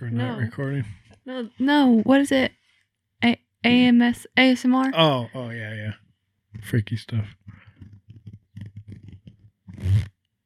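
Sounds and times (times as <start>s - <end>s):
speech: 0.0s - 2.6s, 3.2s - 6.0s, 6.6s - 7.6s
hoodie zipper being pulled: 7.5s - 10.4s.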